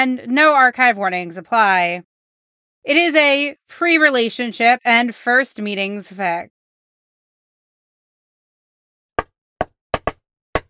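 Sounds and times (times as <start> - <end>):
speech: 0.0 - 2.1, 2.8 - 6.5
knocking on a wooden office door: 9.2 - 10.6.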